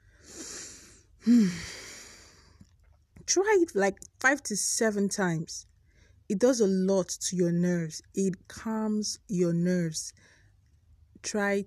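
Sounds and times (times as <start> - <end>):
deep breath in and out: 0.0 - 2.6
speech: 1.3 - 1.8, 3.3 - 5.7, 6.3 - 10.3, 11.2 - 11.6.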